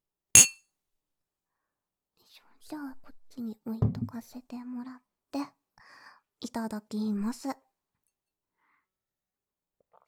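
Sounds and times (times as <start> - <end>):
glasses clinking in a toast: 0.4 - 0.6
speech: 2.6 - 5.6, 6.4 - 7.7.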